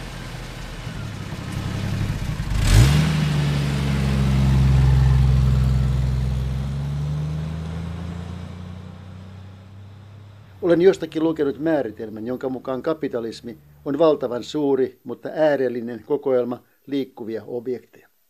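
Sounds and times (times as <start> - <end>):
car combustion engine idling and revving: 0.0 - 12.1
speech: 10.7 - 18.0.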